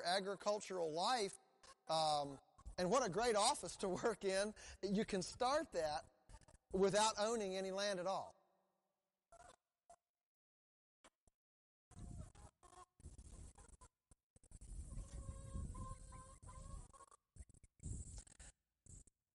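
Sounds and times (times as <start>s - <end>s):
speech: 0.0s - 6.1s, 6.7s - 8.4s
flock of pastured broiler chickens clucking and chirping outdoors: 14.8s - 17.7s.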